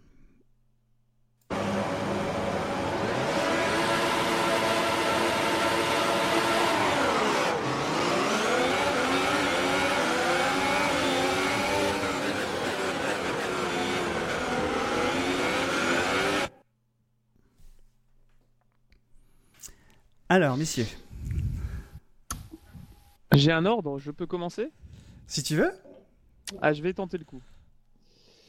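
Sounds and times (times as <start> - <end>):
racing car engine revving through gear changes: 1.5 - 16.6
speech: 20.4 - 21.0, 23.4 - 25.9, 26.5 - 27.5.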